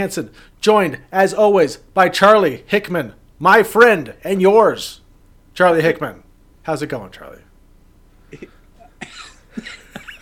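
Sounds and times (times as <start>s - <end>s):
speech: 0.0s - 5.0s, 5.6s - 7.5s, 8.3s - 8.6s
person coughing: 8.3s - 9.9s.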